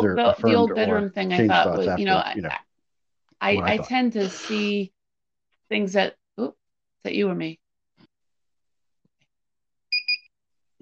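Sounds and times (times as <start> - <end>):
speech: 0.0 - 2.7, 3.4 - 5.0, 5.7 - 7.6
high-pitched electronic beeps from a desk device: 9.9 - 10.3.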